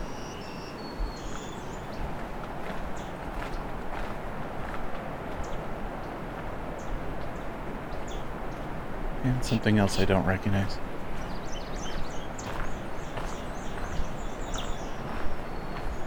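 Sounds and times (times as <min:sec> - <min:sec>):
myrtle warbler ticking calls: 0:00.0 - 0:02.1, 0:02.9 - 0:03.6, 0:06.8 - 0:16.0
steady rushing outdoor noise: 0:00.0 - 0:16.0
speech: 0:09.2 - 0:10.9.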